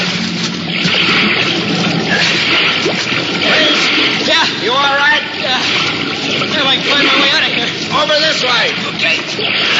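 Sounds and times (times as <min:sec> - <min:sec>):
water rushing in through loading doors: 0:00.0 - 0:09.7.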